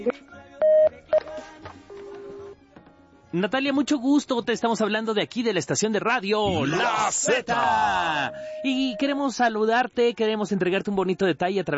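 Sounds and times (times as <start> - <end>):
touch-tone beeps of telephone number being dialed: 0.0 - 1.4, 8.3 - 9.2
speech: 3.3 - 11.7
longer steady telephone tone: 8.2 - 9.2.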